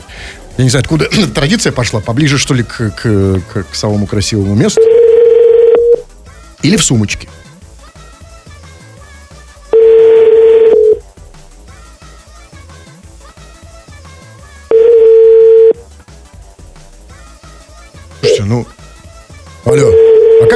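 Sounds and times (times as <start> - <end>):
speech: 0.6 - 5.2, 6.6 - 7.4
telephone tone while someone dials a number: 4.7 - 6.0, 9.7 - 11.0, 14.7 - 15.8, 18.2 - 18.4, 19.7 - 20.5.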